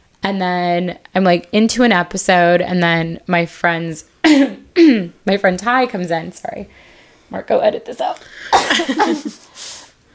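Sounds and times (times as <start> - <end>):
speech: 0.3 - 9.8
person coughing: 4.2 - 5.1, 8.5 - 9.5.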